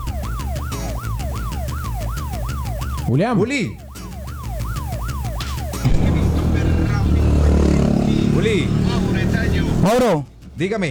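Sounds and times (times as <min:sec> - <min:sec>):
wailing siren rising and falling: 0:00.0 - 0:09.9
speech: 0:03.1 - 0:03.8, 0:08.4 - 0:08.8, 0:09.6 - 0:10.8
busy street traffic rumbling on an avenue: 0:05.4 - 0:10.7.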